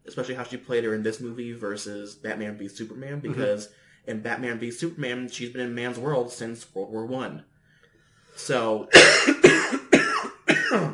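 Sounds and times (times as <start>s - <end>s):
speech: 0.2s - 7.5s, 8.4s - 9.7s, 10.7s - 10.9s
person coughing from a tickle in the throat: 3.3s - 3.6s, 8.9s - 10.9s.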